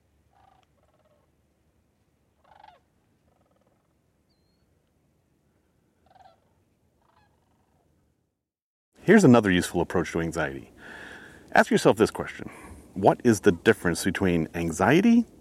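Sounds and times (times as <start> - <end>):
hundreds of migrating sandhill cranes calling while circling overhead: 0.3 - 1.3, 2.4 - 4.7, 6.0 - 7.9
speech: 9.1 - 15.4.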